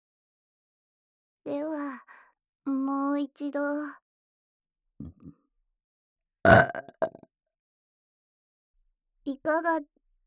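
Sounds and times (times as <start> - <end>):
speech: 3.2 - 4.0, 6.4 - 7.2, 9.3 - 10.0
loud drawn-out burp: 6.5 - 7.2
short low gulping sounds: 6.5 - 7.2.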